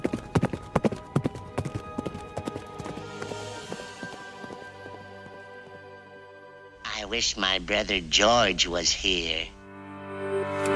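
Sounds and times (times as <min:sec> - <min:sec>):
hooves of a wild horse galloping across a frozen field: 0:00.0 - 0:05.9
speech: 0:07.0 - 0:09.6.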